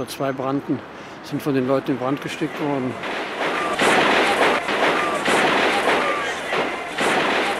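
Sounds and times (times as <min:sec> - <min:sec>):
speech: 0:00.0 - 0:03.2
soldiers firing machine guns in front of the radio building in Prague: 0:03.0 - 0:07.5.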